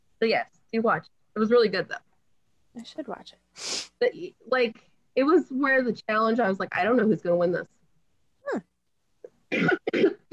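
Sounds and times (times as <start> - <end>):
speech: 0.2 - 2.1, 2.8 - 7.8, 8.5 - 8.7
person coughing: 9.5 - 10.3.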